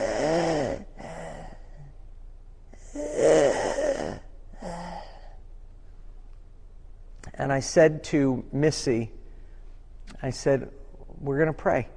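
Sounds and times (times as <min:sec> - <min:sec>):
voice imitating a sick baby's labored breathing: 0:00.0 - 0:02.0, 0:02.8 - 0:05.4
speech: 0:07.4 - 0:09.2, 0:10.2 - 0:11.9.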